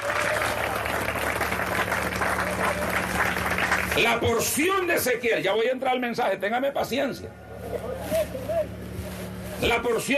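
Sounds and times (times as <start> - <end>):
church congregation clapping during a service: 0.0 - 4.9
speech: 4.0 - 7.9, 9.6 - 10.1.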